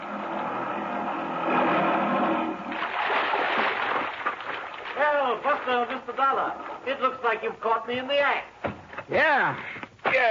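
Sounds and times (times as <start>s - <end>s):
boat pulling up beside a low rocky ledge: 0.0s - 6.8s
steady churning wash of water: 1.4s - 6.9s
choppy water splashing against something solid: 2.7s - 6.8s
speech: 5.3s - 8.5s, 9.1s - 10.2s.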